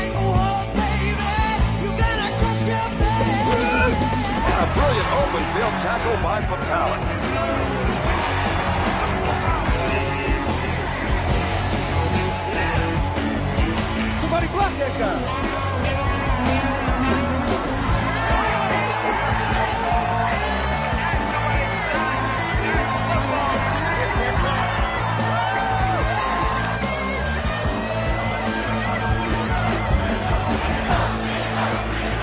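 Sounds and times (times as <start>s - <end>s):
large stadium crowd cheering and yelling: 0.0s - 32.2s
speech: 5.8s - 7.9s.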